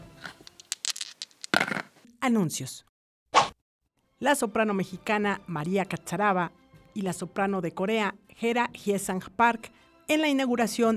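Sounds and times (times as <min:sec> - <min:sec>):
dice rattling: 0:00.3 - 0:01.9
speech: 0:02.3 - 0:02.9, 0:04.2 - 0:10.9.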